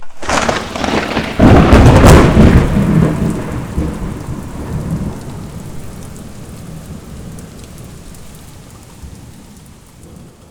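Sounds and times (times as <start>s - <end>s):
thunder: 0.0s - 8.0s.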